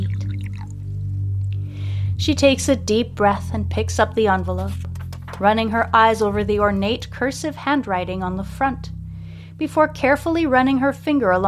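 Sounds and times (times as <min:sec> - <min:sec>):
hot water poured into a cup: 0:00.0 - 0:00.8
steady low electrical hum: 0:00.0 - 0:11.4
speech: 0:02.2 - 0:09.0, 0:09.6 - 0:11.4.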